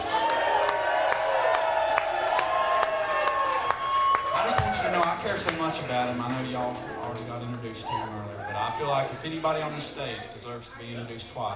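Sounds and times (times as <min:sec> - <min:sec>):
crowd cheering and whooping: 0:00.0 - 0:05.4, 0:06.9 - 0:09.7
audience applause: 0:00.0 - 0:10.1
speech: 0:05.2 - 0:11.5.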